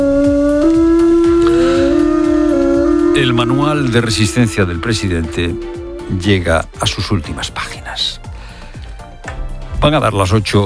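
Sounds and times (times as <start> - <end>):
wolf howling: 0.0 - 6.5
rhythmic low thumps: 0.0 - 9.9
speech: 3.2 - 8.3, 9.8 - 10.6.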